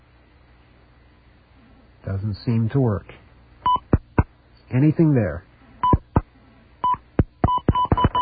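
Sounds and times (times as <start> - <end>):
speech: 2.1 - 3.2, 4.7 - 5.5
telephone keypad tones: 6.9 - 8.2.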